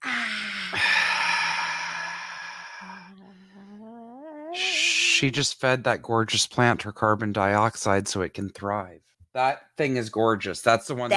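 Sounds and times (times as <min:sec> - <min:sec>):
deep inhale during a guided breathing moment: 0:00.0 - 0:03.8
speech: 0:05.2 - 0:11.1.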